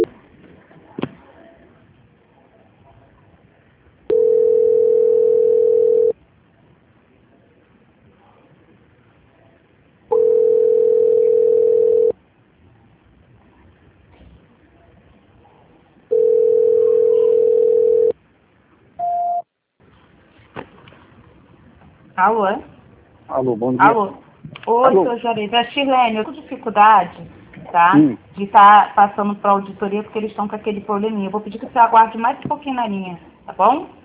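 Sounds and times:
telephone line tones during a call transfer: 4.1 - 6.1, 10.1 - 12.1, 16.1 - 18.1
speech: 22.2 - 22.7, 23.4 - 34.0.

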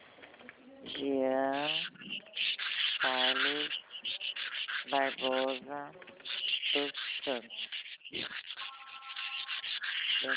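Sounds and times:
sandpaper rasping against a wooden door frame: 1.7 - 5.6, 6.2 - 10.3
speech: 4.9 - 6.2, 6.8 - 7.7.

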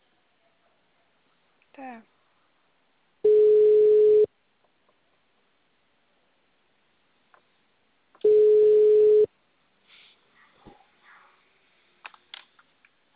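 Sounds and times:
speech: 1.8 - 2.2
electronic ringback tone over a phone line: 3.2 - 4.3, 8.2 - 9.3.

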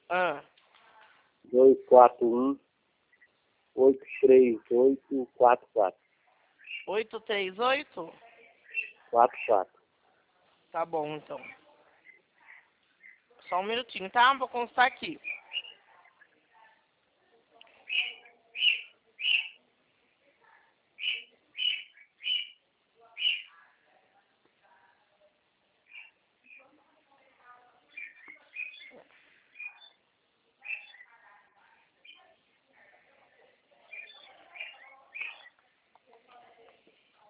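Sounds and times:
faint noise: 0.0 - 37.2
speech: 0.1 - 0.5, 1.5 - 2.6, 3.8 - 6.0, 6.7 - 8.2, 9.1 - 9.8, 10.7 - 11.6, 13.5 - 15.6
small bird chirping: 3.0 - 4.6, 6.0 - 9.6, 11.3 - 14.0, 14.9 - 16.5, 17.6 - 19.6, 21.0 - 23.6, 25.8 - 26.8, 27.8 - 31.3, 32.0 - 32.4, 33.8 - 36.0.

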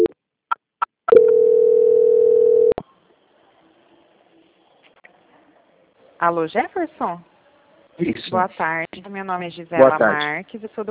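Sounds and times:
steady mid-pitched telephone call transfer tone: 1.1 - 2.8
speech: 6.2 - 7.3, 8.0 - 10.8.

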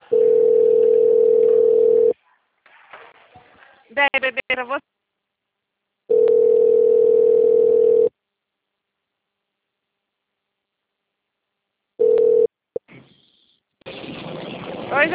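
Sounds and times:
telephone dial tone after a dropped call: 0.1 - 2.1, 6.1 - 8.1, 12.0 - 12.5
speech: 4.0 - 5.0.

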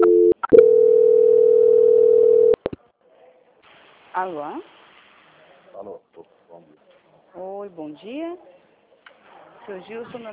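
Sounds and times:
telephone tone during a call transfer: 0.0 - 2.6
speech: 4.2 - 4.8, 7.4 - 8.5, 9.6 - 10.3.

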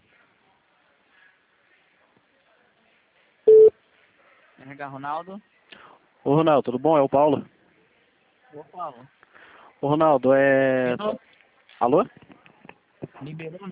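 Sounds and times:
electronic telephone tones while a call is being transferred: 3.5 - 3.7
single short beep: 3.5 - 3.7
speech: 4.8 - 5.5, 6.2 - 7.5, 8.5 - 12.2, 13.2 - 13.7.

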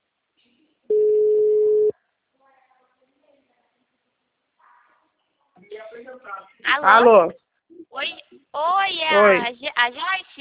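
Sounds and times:
telephone ringback tone as an outgoing call connects: 0.9 - 1.9
speech: 6.1 - 10.3.

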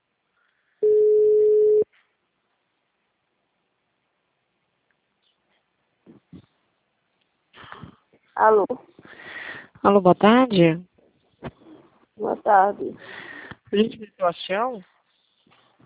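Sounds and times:
WhatsApp call ringing tone: 0.8 - 1.8
speech: 8.4 - 8.9, 9.8 - 11.6, 12.2 - 14.9.

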